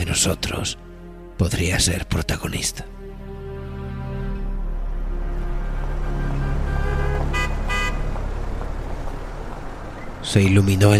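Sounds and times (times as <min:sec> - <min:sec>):
speech: 0:00.1 - 0:03.0, 0:10.2 - 0:10.9
car engines accelerating at a traffic light: 0:04.8 - 0:10.9
car horn toots: 0:06.0 - 0:08.2.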